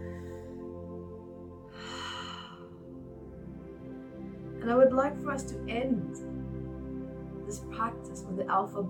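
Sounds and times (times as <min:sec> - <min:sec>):
person taking a slow deep breath: 0:00.0 - 0:00.8, 0:01.6 - 0:03.0
soft steady droning tone: 0:00.0 - 0:08.8
speech: 0:04.7 - 0:06.4, 0:07.8 - 0:08.8.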